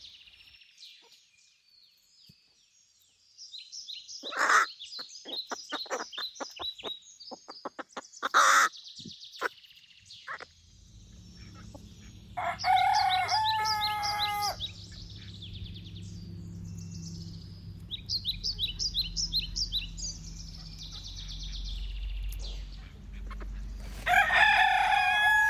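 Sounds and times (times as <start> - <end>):
crow cackling like a chicken: 4.2 - 6.2, 7.7 - 8.7, 11.3 - 15.5, 22.4 - 25.4
low rumbling hum: 10.6 - 25.4.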